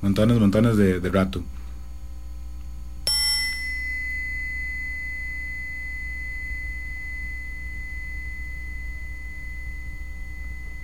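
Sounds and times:
speech: 0:00.0 - 0:01.6
low steady hum: 0:00.0 - 0:10.8
energy chime bell ringing and resonating: 0:03.1 - 0:10.8.

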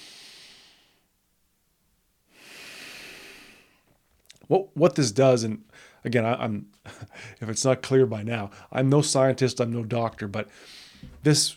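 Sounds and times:
slow deliberate breathing close to the microphone: 0:00.0 - 0:01.1, 0:02.3 - 0:04.0, 0:05.7 - 0:06.0, 0:10.5 - 0:11.2
speech: 0:04.5 - 0:11.5.

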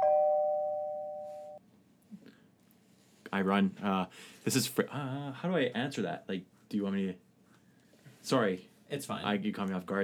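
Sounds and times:
doorbell electronic chime: 0:00.0 - 0:01.6
speech: 0:03.4 - 0:07.2, 0:08.2 - 0:10.0.

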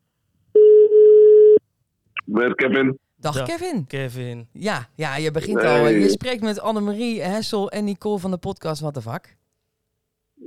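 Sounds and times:
telephone ringing tone when placing a call: 0:00.6 - 0:01.6
speech: 0:02.3 - 0:09.4.

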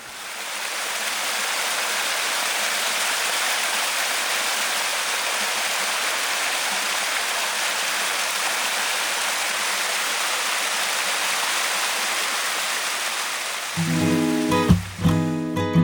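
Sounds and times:
rushing water of a stream or small waterfall: 0:00.0 - 0:15.7.

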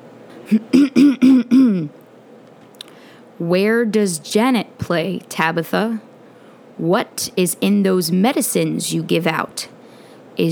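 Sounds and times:
person clearing throat: 0:00.4 - 0:02.0
speech: 0:00.5 - 0:02.0, 0:03.4 - 0:06.1, 0:06.8 - 0:09.7, 0:10.4 - 0:10.5.

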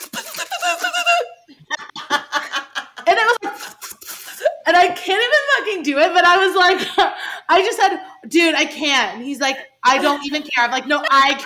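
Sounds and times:
voice imitating a toilet plunger squelching: 0:00.0 - 0:01.5, 0:03.1 - 0:04.7
laughter: 0:00.0 - 0:04.0, 0:10.0 - 0:11.4
speech: 0:04.8 - 0:11.4.

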